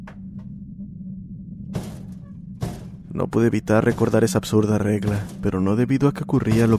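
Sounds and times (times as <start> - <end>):
steady low rumble: 0.0 - 6.7
heavy knocks on a door: 1.8 - 3.1, 3.8 - 5.5
speech: 3.2 - 6.7.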